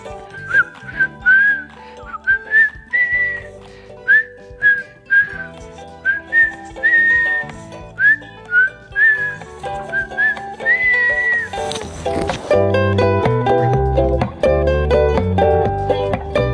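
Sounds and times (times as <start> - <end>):
person whistling a bright sliding melody: 0.0 - 11.6
instrumental backing music: 0.0 - 16.5.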